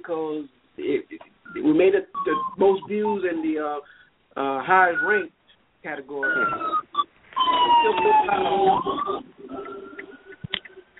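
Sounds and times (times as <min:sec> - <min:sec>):
speech: 0:00.0 - 0:09.7
emergency vehicle siren wailing as it passes: 0:06.2 - 0:10.5.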